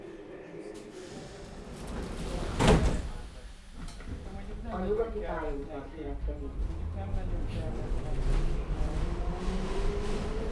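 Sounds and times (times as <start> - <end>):
train doors sliding shut: 1.3 - 4.2
speech: 5.2 - 9.9.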